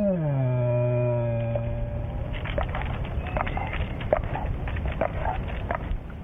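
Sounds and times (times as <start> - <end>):
bear moaning in fear up a tree: 0.0 - 2.4
crackling and rustling: 2.0 - 6.2.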